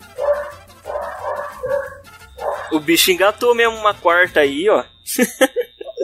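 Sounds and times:
small dog barking in high-pitched yaps: 0:00.2 - 0:02.8
speech: 0:02.7 - 0:05.6
laughter: 0:05.1 - 0:06.0.

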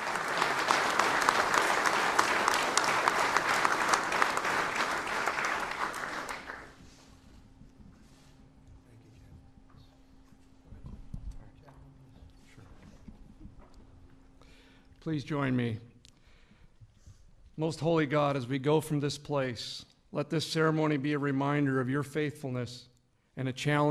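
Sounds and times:
large audience applauding at ceremony: 0:00.0 - 0:06.9
speech: 0:15.1 - 0:15.9, 0:17.6 - 0:23.8.

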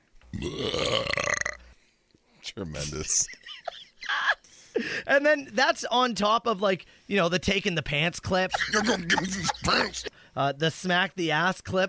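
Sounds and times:
loud burp: 0:00.3 - 0:01.8
speech: 0:00.4 - 0:01.2, 0:02.6 - 0:03.8, 0:04.8 - 0:11.8
laughter: 0:03.1 - 0:05.0, 0:08.4 - 0:10.1.

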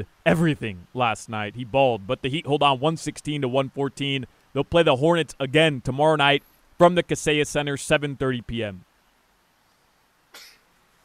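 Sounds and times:
speech: 0:00.0 - 0:08.9
person sneezing: 0:10.3 - 0:10.7.

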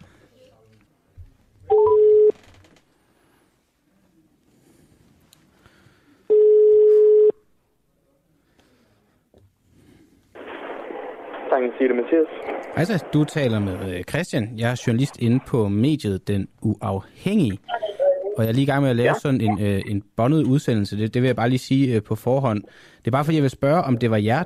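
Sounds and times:
faint noise: 0:00.0 - 0:24.4
ringback tones from an outgoing phone call: 0:01.7 - 0:02.4, 0:06.3 - 0:07.4
speech: 0:11.6 - 0:17.8, 0:18.4 - 0:24.4.

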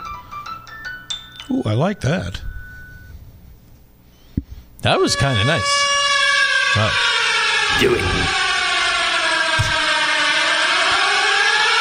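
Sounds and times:
speech: 0:01.5 - 0:02.5, 0:04.8 - 0:05.9, 0:06.8 - 0:07.1, 0:07.8 - 0:08.4
siren sound effect wailing: 0:04.9 - 0:11.7.

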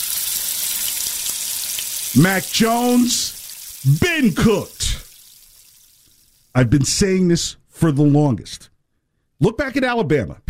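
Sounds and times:
frying pan sizzle: 0:00.0 - 0:06.5
speech: 0:02.1 - 0:05.0, 0:06.6 - 0:08.7, 0:09.4 - 0:10.4.

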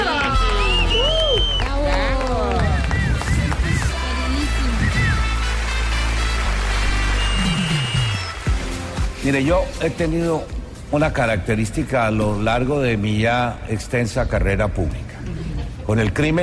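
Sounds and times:
people whooping and cheering: 0:00.0 - 0:05.6, 0:06.6 - 0:08.6
crowd applauding to welcome a comedian: 0:00.0 - 0:09.3
speech: 0:09.3 - 0:16.4.

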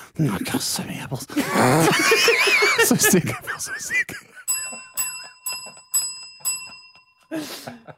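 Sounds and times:
speech: 0:00.2 - 0:04.3, 0:07.3 - 0:07.9
laughter: 0:01.3 - 0:07.9
small bell dinging: 0:04.5 - 0:07.4.

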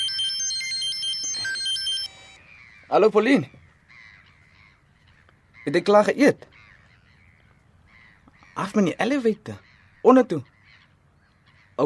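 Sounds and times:
telephone ringing with a bright electronic ringtone: 0:00.0 - 0:02.5
speech: 0:02.9 - 0:03.6, 0:05.7 - 0:06.5, 0:08.6 - 0:10.5.

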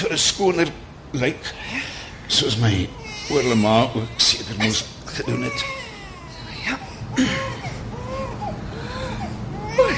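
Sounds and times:
speech: 0:00.0 - 0:05.8, 0:06.6 - 0:07.5
baby crying faintly with wavering wails: 0:03.0 - 0:09.9.

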